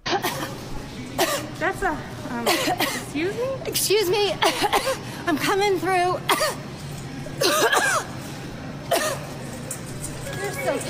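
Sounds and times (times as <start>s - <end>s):
person coughing raspily: 0.0s - 0.6s, 1.2s - 1.5s, 2.4s - 3.1s, 4.4s - 5.0s, 7.4s - 8.1s, 8.9s - 9.3s
speech: 1.2s - 6.7s, 7.4s - 7.9s, 10.6s - 10.8s.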